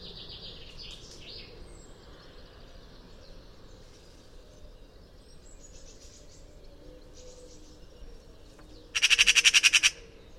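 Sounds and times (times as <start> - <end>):
Eurasian magpie Pica pica chattering: 9.0 - 10.0.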